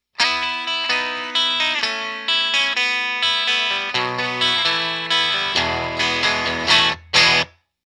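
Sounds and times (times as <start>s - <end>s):
guitar riff with low cut and treble boost: 0.1s - 7.6s.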